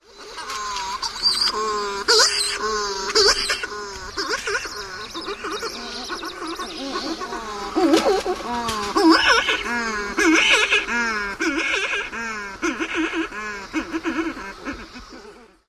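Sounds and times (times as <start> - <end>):
calls from burrows with chicks: 0.0 - 15.6
laughter: 0.4 - 14.5.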